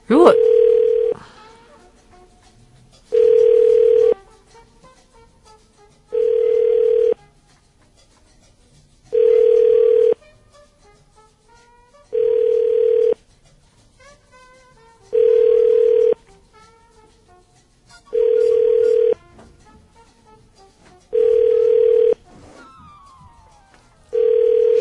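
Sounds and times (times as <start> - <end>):
telephone ringback tone on an unanswered call: 0.1 - 1.2, 3.1 - 4.2, 6.2 - 7.2, 9.2 - 10.2, 12.1 - 13.2, 15.1 - 16.2, 18.2 - 19.2, 21.1 - 22.2, 24.1 - 24.7.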